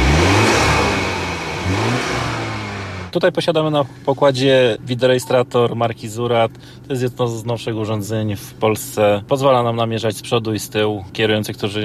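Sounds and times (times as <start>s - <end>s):
police BMW 3 Series car 252 hp automatic four-wheel drive engine revving: 0.0s - 3.2s
speech: 3.1s - 11.8s.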